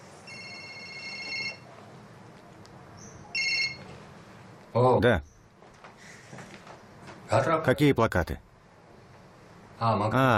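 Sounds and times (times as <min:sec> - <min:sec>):
telephone ringing with a bright electronic trill: 0:00.2 - 0:01.7, 0:03.3 - 0:04.0
speech: 0:04.8 - 0:05.3, 0:07.3 - 0:08.4, 0:09.8 - 0:10.3.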